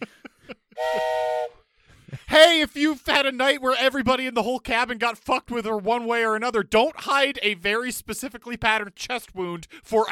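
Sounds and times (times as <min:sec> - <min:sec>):
steam whistle blast: 0:00.8 - 0:01.6
speech: 0:02.4 - 0:10.0.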